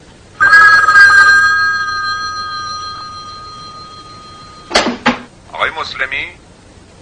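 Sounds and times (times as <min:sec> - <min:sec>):
telephone bell ringing: 0:00.4 - 0:04.8
speech: 0:05.8 - 0:06.4.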